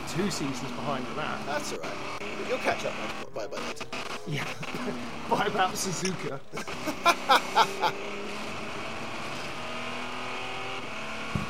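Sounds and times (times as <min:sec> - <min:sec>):
diesel race car engine droning, heard on board: 0:00.0 - 0:11.4
speech: 0:00.2 - 0:08.6
laughter: 0:04.2 - 0:08.1.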